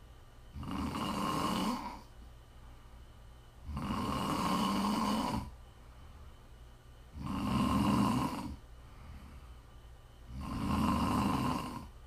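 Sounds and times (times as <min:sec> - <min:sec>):
faint hiss: 0:00.0 - 0:12.0
quiet breathing: 0:00.0 - 0:12.0
person snoring with rough buzzing low rumble: 0:00.5 - 0:02.1, 0:03.6 - 0:05.6, 0:07.1 - 0:09.4, 0:10.3 - 0:12.0.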